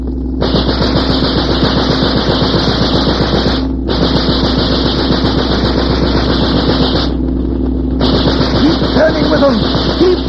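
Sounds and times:
low steady engine drone: 0:00.0 - 0:10.2
rapid automatic gunfire from a ship's gun: 0:00.4 - 0:07.3, 0:08.0 - 0:10.2.

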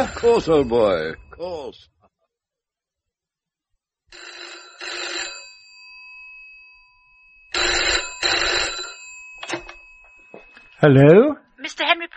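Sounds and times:
telephone bell ringing in paired bursts: 0:00.0 - 0:01.4, 0:04.1 - 0:11.1
speech: 0:00.0 - 0:01.9, 0:10.8 - 0:12.1.

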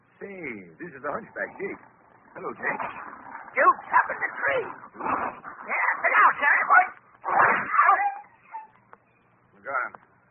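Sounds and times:
speech: 0:01.0 - 0:06.9
dog whining and yelping: 0:07.2 - 0:09.0.

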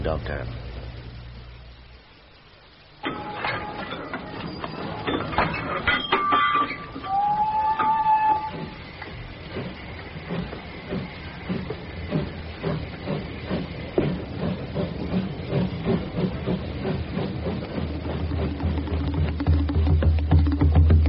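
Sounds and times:
speech: 0:00.0 - 0:00.7
train rumbling along the rails: 0:03.0 - 0:21.0
thin train wheel squeal: 0:03.1 - 0:09.0.

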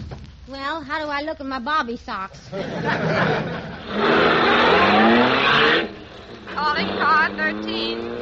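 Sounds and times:
speech: 0:00.8 - 0:08.2
laughter: 0:02.5 - 0:04.3
patrol wagon engine revving: 0:03.5 - 0:08.2.

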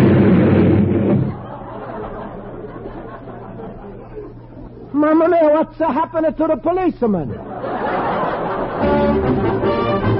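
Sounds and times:
firecracker blast: 0:00.0 - 0:01.6
laughter: 0:01.2 - 0:04.9, 0:07.2 - 0:09.6
speech: 0:05.1 - 0:07.5.

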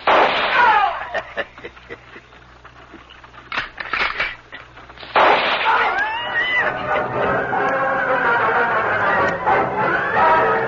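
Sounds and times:
carbine rifle shots: 0:00.0 - 0:00.7, 0:05.0 - 0:05.9
continuous noisy commotion: 0:00.0 - 0:10.6
laughter: 0:00.9 - 0:02.5
raised voice-like cries: 0:05.6 - 0:06.8.

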